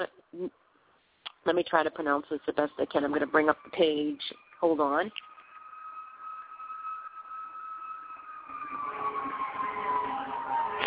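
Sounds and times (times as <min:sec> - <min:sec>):
speech: 0:01.5 - 0:05.3
fire engine siren wailing: 0:03.6 - 0:10.8.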